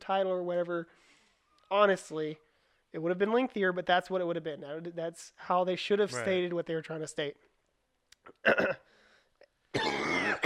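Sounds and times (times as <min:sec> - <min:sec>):
speech: 0:00.1 - 0:01.1, 0:01.7 - 0:07.5, 0:08.2 - 0:08.9
person coughing and sputtering after choking on saliva: 0:08.3 - 0:08.9, 0:09.7 - 0:10.4.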